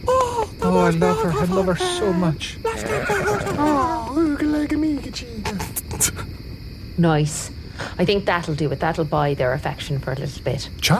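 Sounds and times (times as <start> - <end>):
hiss: 0.0 - 10.9
laughter: 0.6 - 4.4
speech: 0.7 - 4.0, 4.6 - 6.2, 7.0 - 10.9
tiny horse whinnying: 1.8 - 4.1.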